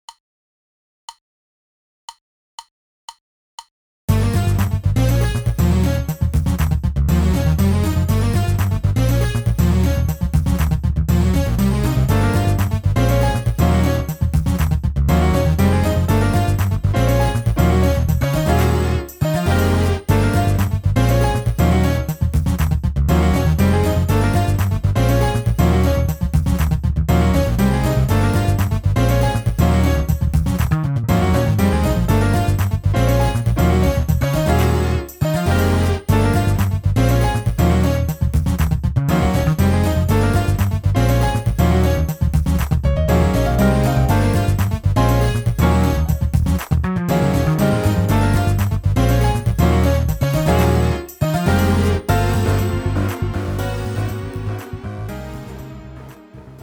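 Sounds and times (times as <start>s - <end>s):
spicy fusion music without drums: 4.1s - 56.6s.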